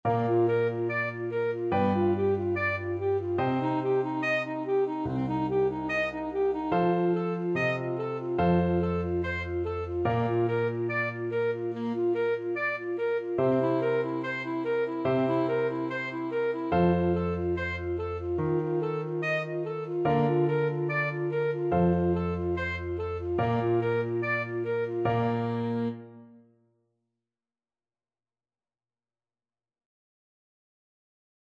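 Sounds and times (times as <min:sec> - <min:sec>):
alto saxophone prelude in D: 0:00.1 - 0:26.5.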